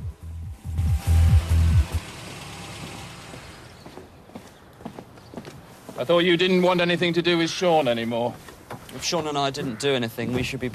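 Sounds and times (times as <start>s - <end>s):
car engine rumbling as the vehicle creeps past to park: 0.0s - 4.2s
speech: 6.0s - 10.7s.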